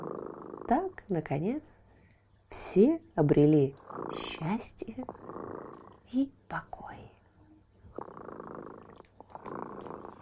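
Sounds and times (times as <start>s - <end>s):
cat purring: 0.0s - 1.8s, 2.6s - 10.2s
speech: 0.7s - 1.9s, 2.5s - 5.3s, 6.1s - 7.1s.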